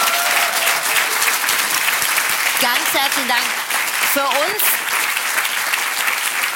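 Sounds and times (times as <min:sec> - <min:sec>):
dense audience applause: 0:00.0 - 0:06.5
speech: 0:02.6 - 0:04.8.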